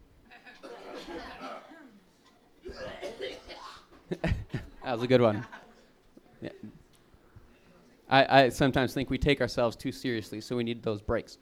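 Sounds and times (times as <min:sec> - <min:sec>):
laughter: 0:00.3 - 0:02.0, 0:02.8 - 0:06.8
short throaty cough: 0:00.6 - 0:04.6
speech: 0:04.9 - 0:05.6, 0:08.1 - 0:11.4.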